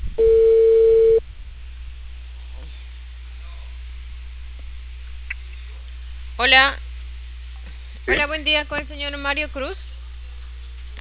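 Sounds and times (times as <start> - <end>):
low constant telephone line hum: 0.0 - 1.2
telephone ringback beep during a call to a client: 0.2 - 1.2
speech: 6.4 - 6.8, 8.1 - 9.9.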